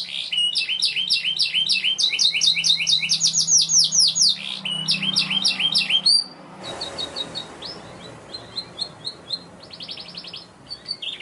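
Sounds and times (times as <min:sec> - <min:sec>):
young canary singing: 0:00.0 - 0:11.1.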